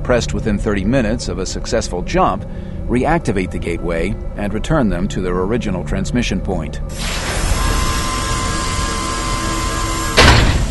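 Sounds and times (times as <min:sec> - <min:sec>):
low mechanical rumble with faint whining tones: 0:00.0 - 0:10.6
speech: 0:00.1 - 0:07.5
heavy chamber door grinding open: 0:06.9 - 0:10.6
heavy door hitting its stop: 0:10.1 - 0:10.6.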